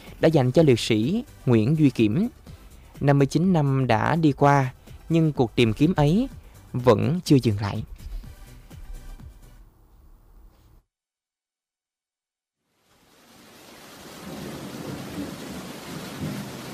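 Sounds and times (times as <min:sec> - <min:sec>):
music: 0:00.0 - 0:10.8
speech: 0:00.2 - 0:02.4, 0:03.0 - 0:07.9
low rumble beneath rain: 0:07.8 - 0:10.6
steady afternoon rain by a river flowing past green villages: 0:12.7 - 0:16.7.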